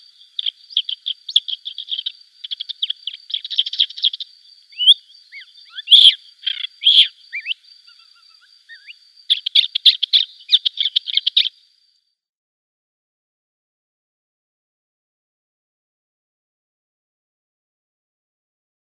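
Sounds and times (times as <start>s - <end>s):
lesser grey shrike chattering song: 0.4s - 11.6s.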